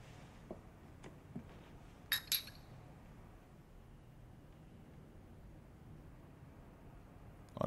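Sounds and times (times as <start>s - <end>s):
quiet hum: 0.0s - 7.6s
glasses clinking in a toast: 2.1s - 2.7s.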